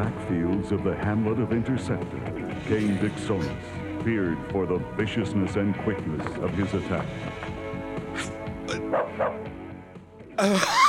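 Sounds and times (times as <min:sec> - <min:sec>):
speech: 0:00.0 - 0:07.5, 0:10.4 - 0:10.8
man imitating a dog barking: 0:08.8 - 0:09.4.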